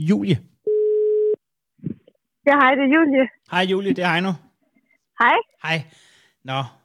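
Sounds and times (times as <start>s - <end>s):
speech: 0.0s - 0.5s, 2.4s - 4.4s, 5.2s - 6.8s
outgoing phone call ringing tone: 0.7s - 1.4s.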